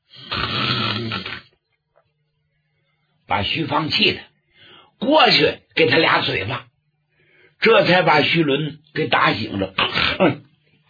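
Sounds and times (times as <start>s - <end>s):
person imitating a rasping snore: 0.1s - 1.6s
speech: 3.3s - 4.3s, 5.0s - 6.7s, 7.6s - 10.4s.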